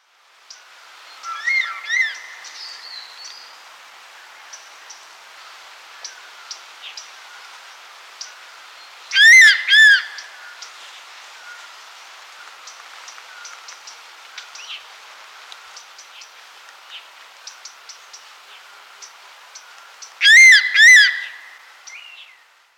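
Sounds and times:
crested serpent eagle calling: 9.1 - 10.3, 20.2 - 22.1.

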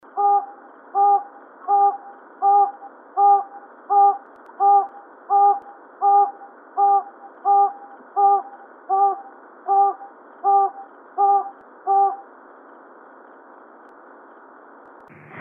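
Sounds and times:
Solomons hawk owl calling: 0.0 - 12.3.

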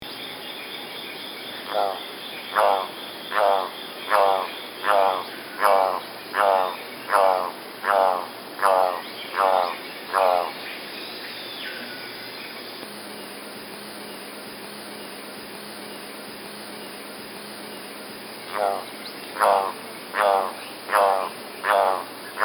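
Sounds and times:
golden-collared toucanet calling: 1.6 - 10.6, 18.5 - 22.4.

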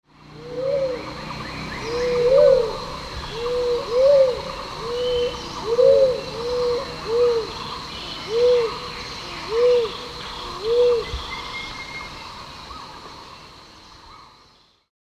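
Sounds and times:
barred cuckoo dove: 0.3 - 11.8.

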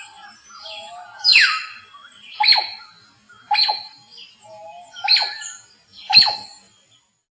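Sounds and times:
white-throated magpie-jay giving harsh rasping calls: 2.4 - 2.9, 3.5 - 3.9, 5.0 - 5.5, 6.1 - 6.5.

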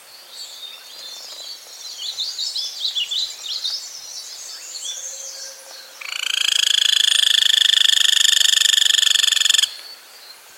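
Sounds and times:
golden-olive woodpecker rapid rattle call: 6.0 - 9.8.

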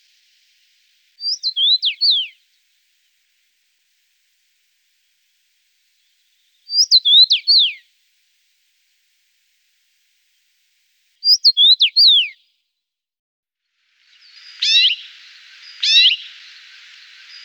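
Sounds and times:
rosefinch sharp falling whistled song: 1.2 - 2.4, 6.0 - 7.9, 11.2 - 12.4, 14.2 - 17.4.

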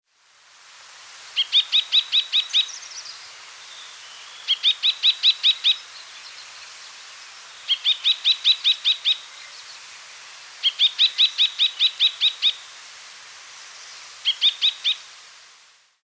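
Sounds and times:
white-browed rosefinch calling: 1.4 - 10.0, 10.6 - 12.6, 14.2 - 15.1.

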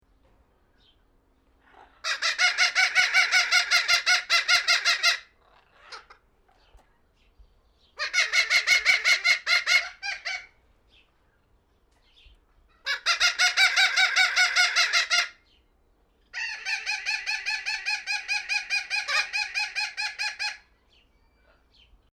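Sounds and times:
maroon-fronted parrot calling: 1.6 - 6.2, 8.0 - 10.6, 12.8 - 15.5, 16.3 - 21.8.

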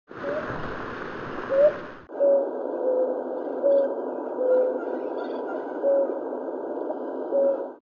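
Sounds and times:
blue ground dove: 1.5 - 6.2, 7.2 - 7.8.

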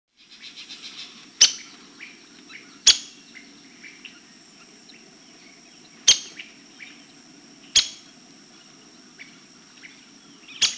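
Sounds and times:
ladder-backed woodpecker: 0.3 - 4.2, 5.9 - 7.1, 7.7 - 10.7.

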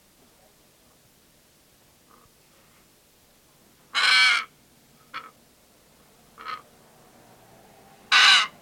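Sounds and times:
Pesquet's parrot screeching: 4.0 - 4.5, 8.1 - 8.6.

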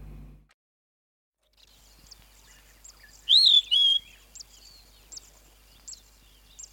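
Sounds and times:
flappet lark giving a two-note whistled phrase: 2.0 - 6.7.

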